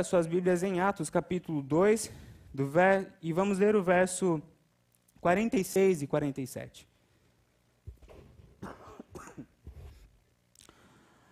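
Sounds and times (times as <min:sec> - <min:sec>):
speech: 0:00.0 - 0:04.5, 0:05.2 - 0:06.9
preacher coughing harshly during a sermon: 0:08.6 - 0:09.6.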